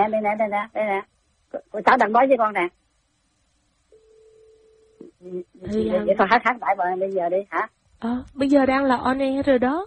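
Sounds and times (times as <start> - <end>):
speech: 0.0 - 2.8, 5.2 - 9.8
low electronic telephone line tone: 3.9 - 5.1.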